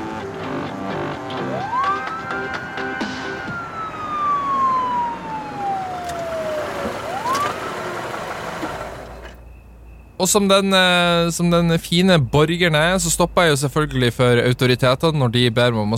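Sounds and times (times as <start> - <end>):
police car siren wailing: 0.0 - 9.4
steady rumble of traffic noise: 0.0 - 15.9
speech: 10.2 - 15.9.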